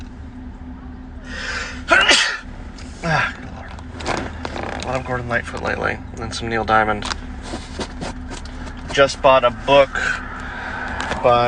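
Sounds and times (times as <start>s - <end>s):
person sneezing: 1.6s - 2.4s
speech: 5.0s - 7.2s, 9.0s - 10.3s, 11.2s - 11.4s.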